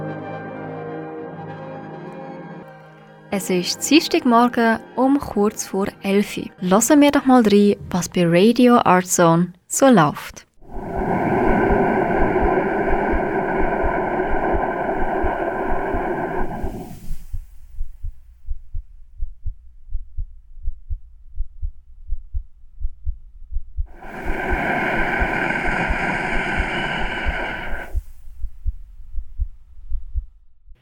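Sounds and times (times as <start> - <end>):
speech: 3.3 - 10.5
loud breaths: 10.6 - 17.5, 23.9 - 28.3
amplified heartbeat: 10.6 - 30.7.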